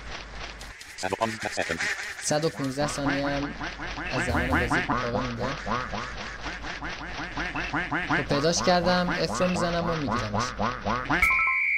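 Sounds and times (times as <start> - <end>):
speech: 1.0 - 6.4, 7.7 - 11.3
duck quacking in an audio game: 1.0 - 11.3.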